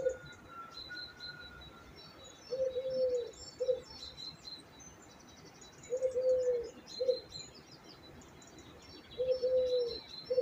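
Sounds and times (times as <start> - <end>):
low dove-like coo: 0.0 - 0.7, 2.5 - 3.9, 5.9 - 7.3, 9.2 - 10.4
higher chirps and thin twittering from smaller birds: 0.0 - 10.4.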